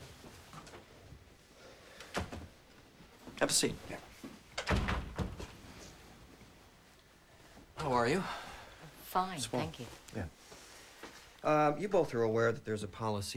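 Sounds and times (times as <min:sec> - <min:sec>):
speech: 0:03.4 - 0:04.1, 0:07.8 - 0:08.4, 0:09.2 - 0:10.4, 0:11.4 - 0:13.3
door swinging and thudding shut: 0:04.6 - 0:05.5.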